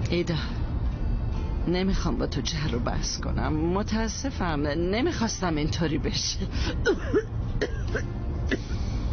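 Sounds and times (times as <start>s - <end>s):
speech: 0.1s - 0.6s, 1.6s - 9.1s
person with a persistent cough coughing raspily: 6.8s - 9.1s
person clearing throat: 6.9s - 9.1s.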